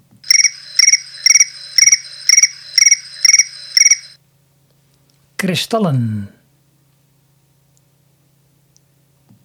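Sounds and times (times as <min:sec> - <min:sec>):
cricket chirping in high-pitched trilled bursts: 0:00.3 - 0:04.2
speech: 0:05.4 - 0:06.4.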